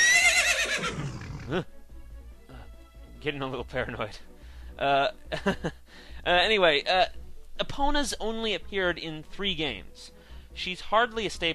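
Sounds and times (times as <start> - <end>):
horse whinnying: 0.0 - 1.6
speech: 1.5 - 1.8, 3.2 - 11.5.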